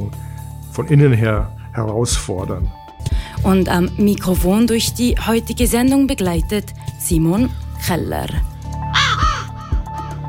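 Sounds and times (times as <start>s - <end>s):
speech: 0.8s - 2.8s, 3.4s - 8.5s
raven cawing harshly: 8.8s - 10.2s.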